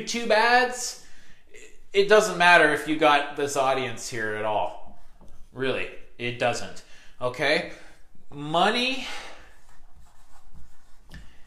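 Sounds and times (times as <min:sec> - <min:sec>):
speech: 0:00.0 - 0:01.0, 0:01.9 - 0:04.8, 0:05.6 - 0:09.3
pen scratching across paper writing notes by hand: 0:09.5 - 0:11.4.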